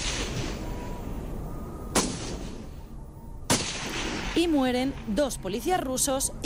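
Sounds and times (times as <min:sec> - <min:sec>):
gunshots: 0:00.0 - 0:00.6, 0:01.9 - 0:02.6, 0:03.5 - 0:04.5
speech: 0:04.4 - 0:06.4.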